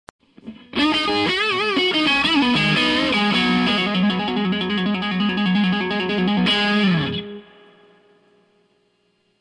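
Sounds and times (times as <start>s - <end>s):
electric guitar with gain and reverb: 0.2s - 9.1s.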